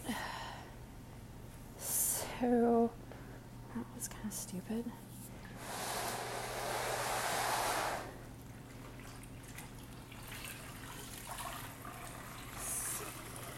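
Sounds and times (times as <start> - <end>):
constant low mechanical hum: 0.0 - 13.5
speech: 2.4 - 3.0, 3.8 - 5.2
dirty mop water sloshing in a bucket: 8.4 - 13.5.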